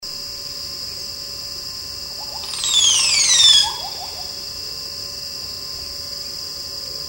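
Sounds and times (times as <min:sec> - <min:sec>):
Psarocolius decumanus calling: 0:02.2 - 0:04.5.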